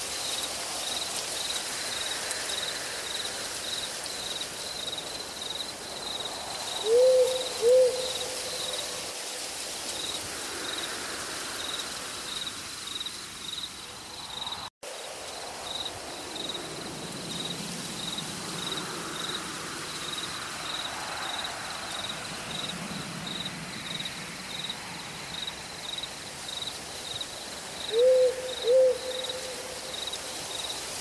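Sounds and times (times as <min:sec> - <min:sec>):
crickets pulsing in a forest at night: 0:00.0 - 0:31.0
light rain in a forest: 0:00.0 - 0:31.0
wind in the branches: 0:00.0 - 0:31.0
owl hooting in a forest at night: 0:06.8 - 0:08.8, 0:27.9 - 0:29.6.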